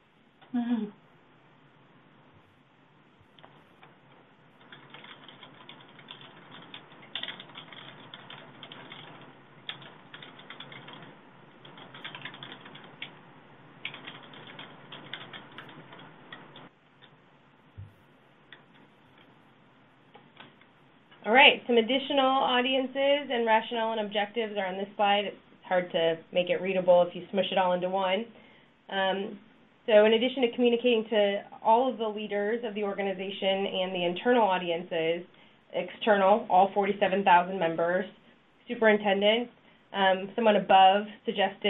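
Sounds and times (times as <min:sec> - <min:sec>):
low hum: 0:00.0 - 0:41.6
speech: 0:00.5 - 0:01.0, 0:21.4 - 0:41.6
typing on a computer keyboard: 0:04.6 - 0:13.2, 0:13.8 - 0:17.1.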